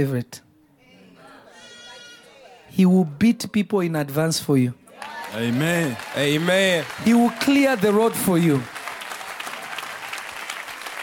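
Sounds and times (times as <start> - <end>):
speech: 0.0 - 0.5, 2.7 - 8.8
congregation clapping in applause: 4.9 - 11.0.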